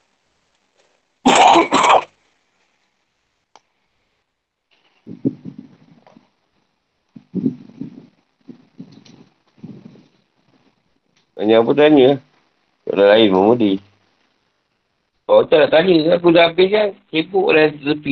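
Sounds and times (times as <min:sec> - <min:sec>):
loud harsh cough: 0:01.3 - 0:02.1
rough throat-clearing rasps: 0:01.3 - 0:02.1
speech: 0:11.4 - 0:12.3, 0:13.0 - 0:13.9, 0:15.3 - 0:18.1.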